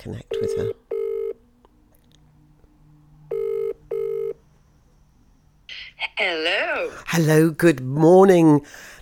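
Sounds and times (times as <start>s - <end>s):
speech: 0.0s - 0.8s, 7.1s - 9.0s
telephone ringback tone on outgoing call: 0.4s - 1.4s, 3.3s - 4.4s.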